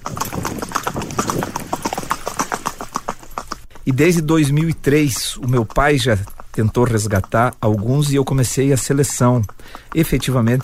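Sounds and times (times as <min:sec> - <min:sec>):
gaited horse hoofbeats in four-beat marcha gait: 0:00.0 - 0:10.6
speech: 0:03.9 - 0:10.6.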